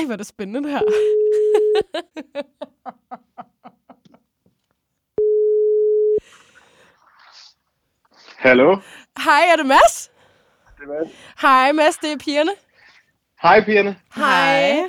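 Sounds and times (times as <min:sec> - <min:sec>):
speech: 0:00.0 - 0:03.2, 0:08.4 - 0:10.1, 0:10.8 - 0:12.6, 0:13.4 - 0:14.8
telephone tone while dialing a three-way call: 0:00.8 - 0:01.9, 0:05.2 - 0:06.2
people laughing: 0:00.9 - 0:04.2
long flat mid-pitched telephone beep: 0:05.2 - 0:06.2.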